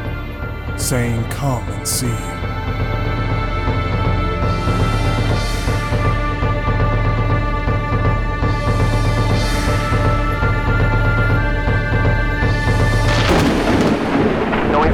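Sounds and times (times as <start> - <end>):
droning musical background: 0.0 - 14.7
speech: 0.8 - 3.0
thunder rolling: 13.1 - 14.9.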